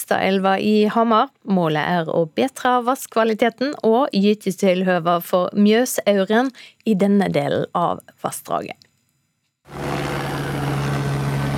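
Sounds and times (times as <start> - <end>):
speech: 0.0 - 8.8
loud helicopter roar overhead: 9.7 - 11.5.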